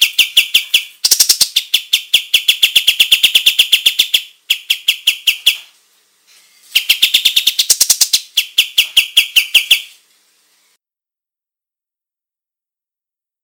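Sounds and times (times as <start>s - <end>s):
olive-winged bulbul singing in full active voice: 0.0s - 5.7s, 6.7s - 10.0s.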